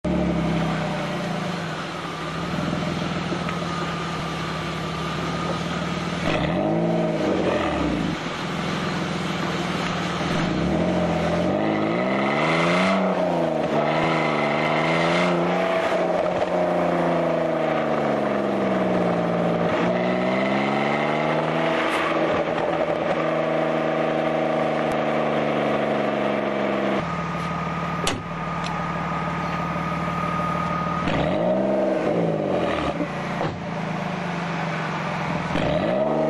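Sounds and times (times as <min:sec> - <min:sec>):
BMW Z3 2.0 car exhaust: 0:00.0 - 0:36.2.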